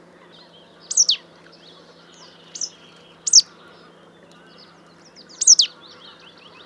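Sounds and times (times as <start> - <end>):
faint steady hum: 0.0 - 6.6
marsh tit Poecile palustris calling: 0.9 - 1.2, 2.5 - 3.5, 5.4 - 5.7.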